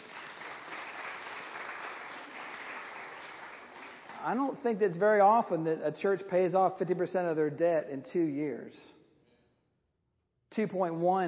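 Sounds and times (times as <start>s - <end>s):
large crowd applauding: 0.0s - 4.2s
speech: 4.2s - 9.0s, 10.6s - 11.2s.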